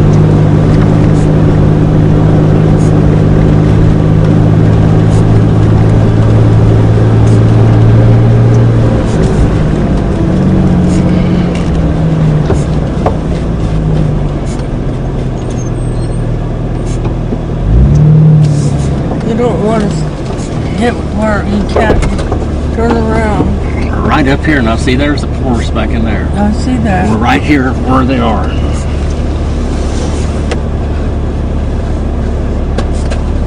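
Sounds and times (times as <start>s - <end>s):
small Toyota Tercel car engine droning: 0.0s - 33.4s
speech: 24.4s - 28.7s.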